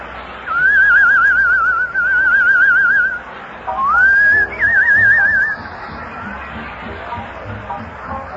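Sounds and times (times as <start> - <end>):
person whistling a short tune: 0.5 - 3.2, 3.8 - 5.7.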